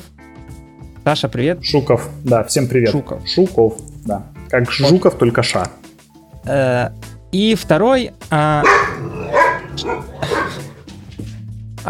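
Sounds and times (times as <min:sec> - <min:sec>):
speech: 0:01.0 - 0:05.8, 0:06.4 - 0:08.9, 0:09.8 - 0:10.4
dogs barking: 0:08.5 - 0:11.0.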